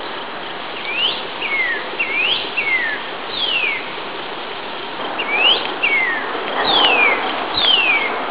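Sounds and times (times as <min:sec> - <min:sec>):
steady background noise: 0:00.0 - 0:08.3
northern cardinal whistling song: 0:00.8 - 0:03.9, 0:05.2 - 0:08.2.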